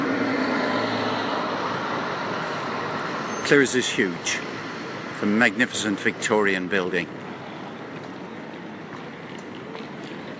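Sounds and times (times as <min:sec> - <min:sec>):
large city bus engine and road noise rumbling past: 0:00.0 - 0:10.3
speech: 0:03.5 - 0:07.2.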